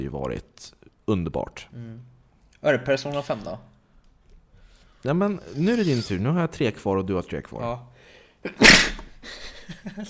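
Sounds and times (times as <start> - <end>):
speech: 0.0 - 3.7, 5.0 - 10.0
person sneezing: 8.6 - 9.2.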